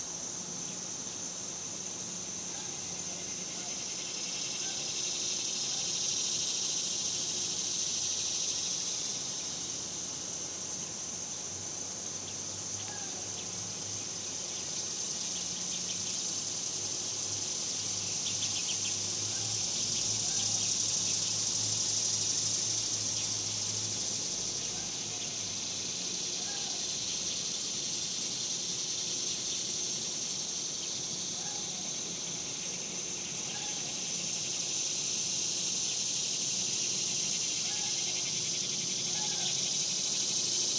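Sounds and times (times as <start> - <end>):
summer cicadas droning in the suburbs: 0.0 - 40.7.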